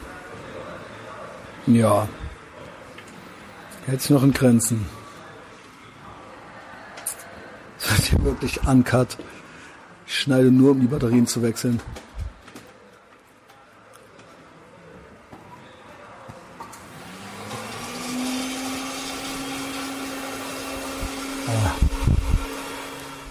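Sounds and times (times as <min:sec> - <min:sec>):
speech: 0:01.7 - 0:02.2, 0:03.9 - 0:05.0, 0:08.1 - 0:09.4, 0:10.1 - 0:12.0
blender motor whirring: 0:16.8 - 0:23.3.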